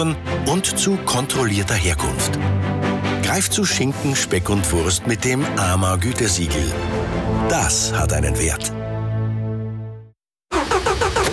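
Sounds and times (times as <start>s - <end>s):
speech: 0.0s - 8.8s
broken-down car engine failing to start: 10.5s - 11.3s.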